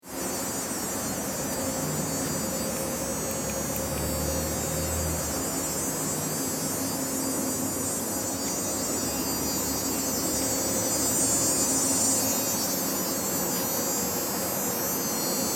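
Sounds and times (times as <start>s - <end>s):
railway electric humming: 0.1s - 15.4s.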